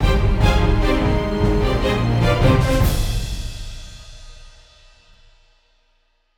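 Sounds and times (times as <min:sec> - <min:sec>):
orchestral battle end background music: 0:00.0 - 0:04.4.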